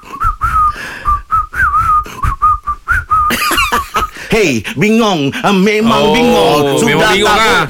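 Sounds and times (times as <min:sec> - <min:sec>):
person whistling a melody: 0:00.0 - 0:03.3
laughter: 0:03.3 - 0:04.2
speech: 0:04.3 - 0:07.6.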